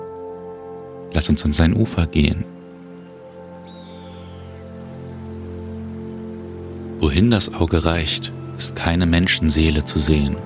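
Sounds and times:
clear river flowing through mountains and conifer forests: 0:00.0 - 0:10.4
speech: 0:01.1 - 0:02.6, 0:07.0 - 0:10.4
high bird call: 0:03.6 - 0:05.6.

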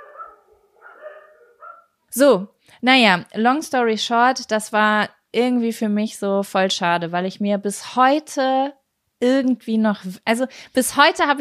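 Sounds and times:
several dogs barking and yelping excitedly: 0:00.0 - 0:02.0
speech: 0:02.1 - 0:11.3.

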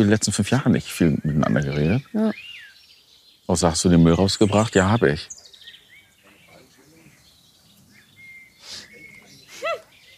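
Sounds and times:
faint voices murmuring: 0:00.0 - 0:02.4, 0:03.5 - 0:10.1
speech: 0:00.0 - 0:02.5, 0:03.5 - 0:05.4
birds chirping and tweeting in an outdoor garden: 0:00.0 - 0:10.1.

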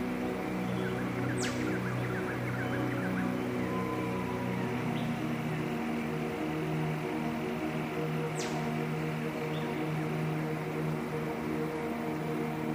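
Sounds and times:
dense rush of mighty masses of water in a jungle: 0:00.0 - 0:12.7
faint scattered bird chirps in a jungle: 0:00.6 - 0:05.4.

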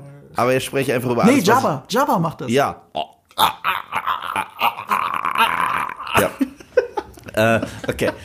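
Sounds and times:
speech: 0:00.4 - 0:03.7, 0:07.4 - 0:08.2
voice imitating a dying dog whimpering: 0:02.9 - 0:06.4.

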